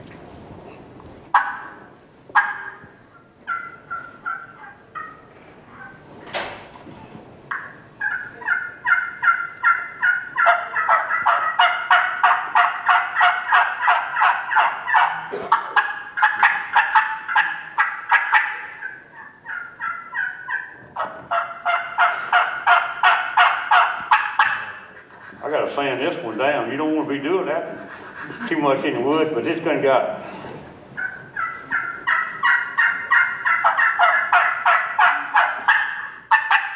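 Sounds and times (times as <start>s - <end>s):
turkey hen yelps made on several turkey callers: 1.3s - 1.8s, 2.4s - 6.0s, 7.5s - 25.0s, 31.0s - 36.7s
laughter: 25.0s - 29.7s
speech: 28.7s - 30.2s.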